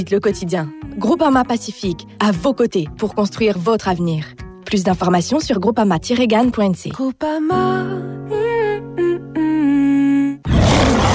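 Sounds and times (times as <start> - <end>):
speech: 0.0 - 9.6
lion roaring: 10.5 - 11.1.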